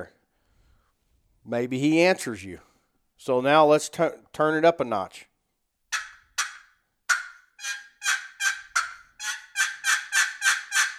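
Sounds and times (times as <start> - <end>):
speech: 1.5 - 5.3
turkey call imitating excited hen yelping: 6.0 - 10.9.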